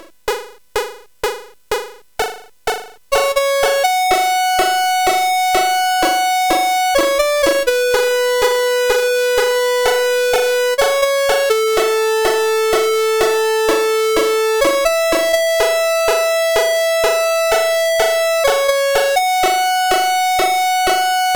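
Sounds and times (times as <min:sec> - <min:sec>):
SID 8580R5 chiptune game music: 0:00.3 - 0:21.3.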